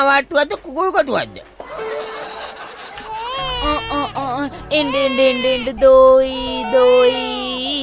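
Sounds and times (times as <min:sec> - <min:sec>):
speech: 0:00.0 - 0:02.2, 0:03.6 - 0:07.8
laughter: 0:02.1 - 0:03.4
baby crying: 0:02.9 - 0:07.8.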